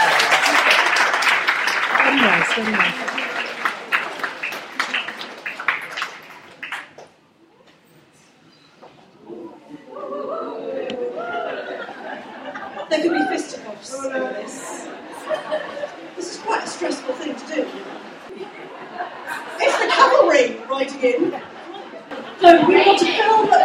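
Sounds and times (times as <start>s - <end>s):
crowd applauding for an author given a special mention: 0.0s - 7.2s
speech: 2.5s - 3.2s
laughter: 9.9s - 23.6s.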